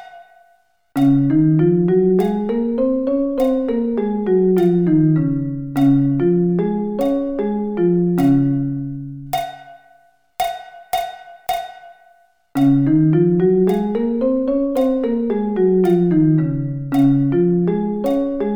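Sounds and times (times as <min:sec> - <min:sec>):
D-flat scale: 0:01.0 - 0:09.5, 0:12.6 - 0:18.5.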